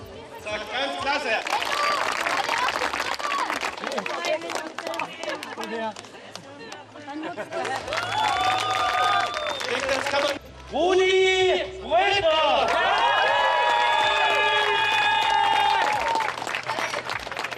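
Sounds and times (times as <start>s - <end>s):
lively chatter: 0.0s - 8.1s
speech: 0.5s - 1.7s, 4.4s - 6.2s, 7.1s - 12.9s
large crowd applauding at an award ceremony: 1.2s - 6.8s, 7.4s - 10.4s, 12.6s - 17.5s
crowd cheering at an award ceremony: 1.4s - 5.7s, 7.6s - 10.4s, 12.6s - 17.5s.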